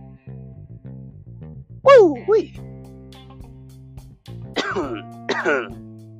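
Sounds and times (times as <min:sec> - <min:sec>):
speech: 0:02.3 - 0:02.7, 0:04.8 - 0:05.8
raspy coughs with throat clearing: 0:04.6 - 0:05.8.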